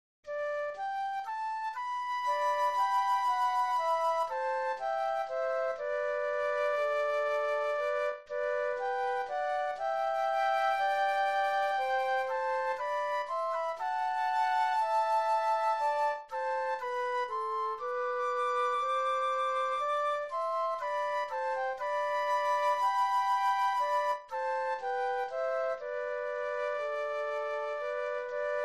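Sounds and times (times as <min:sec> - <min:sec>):
flute duet: 0:00.3 - 0:28.6.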